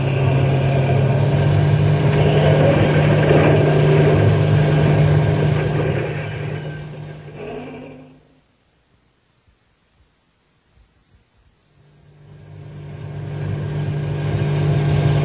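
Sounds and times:
truck engine roaring at full speed leaving a park: 0.0 - 8.5, 11.8 - 15.2.

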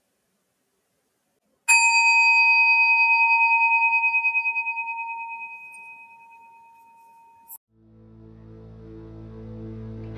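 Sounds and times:
single meditation bell struck and ringing: 1.7 - 7.6.

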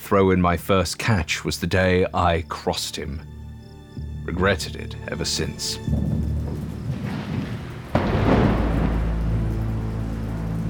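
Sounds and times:
speech: 0.1 - 3.4, 4.2 - 6.6
thunder crack and rumble: 5.8 - 10.6
heavy rain pouring down onto a lake: 5.9 - 10.6.

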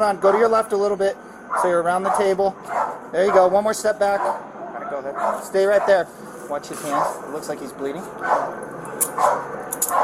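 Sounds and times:
speech: 0.0 - 9.6
police dog barking: 1.5 - 3.5, 4.2 - 6.0, 8.2 - 8.6, 9.2 - 10.0.

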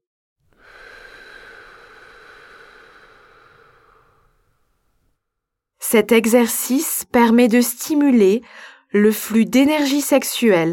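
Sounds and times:
long steady exhale of breath: 0.5 - 5.0
speech: 5.9 - 10.7.

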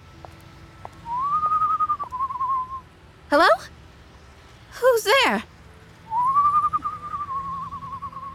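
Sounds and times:
person whistling a tune in a darkened alley: 1.1 - 2.8, 6.1 - 8.3
speech: 3.3 - 3.7, 5.0 - 5.5.

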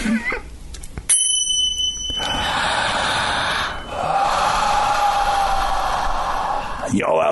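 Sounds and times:
small chimes ringing: 1.1 - 2.9
people breathing slowly in a breathing exercise: 2.1 - 6.9.

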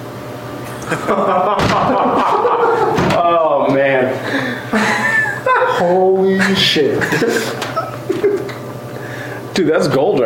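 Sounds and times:
laughter: 0.7 - 8.7
speech: 0.9 - 2.6, 6.7 - 7.6, 9.6 - 10.2
door slamming shut: 1.6 - 2.0, 2.9 - 3.3.

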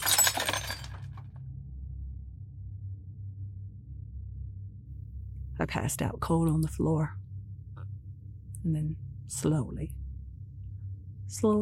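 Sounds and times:
glass shards tinkling: 0.0 - 1.2
loud crash of breaking glass during a struggle: 0.0 - 1.2
steady low rumble: 0.0 - 11.6
speech: 5.6 - 7.2, 8.6 - 10.0, 11.3 - 11.6.

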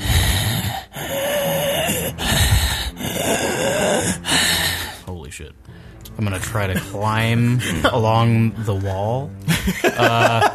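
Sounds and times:
raspy breathing of a bony creature: 0.0 - 5.1
speech: 5.4 - 10.5
laughter: 9.5 - 10.5.

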